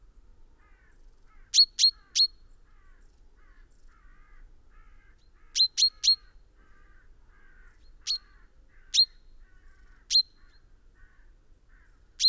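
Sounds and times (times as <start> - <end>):
common chaffinch calling: 1.6 - 2.4, 5.6 - 6.2, 8.1 - 9.2, 10.1 - 10.5.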